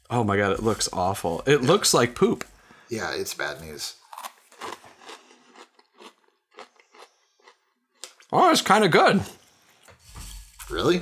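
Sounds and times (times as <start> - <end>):
speech: 0.1 - 4.0, 8.3 - 9.4, 10.7 - 10.9
dry bran cereal being chewed: 4.0 - 8.2.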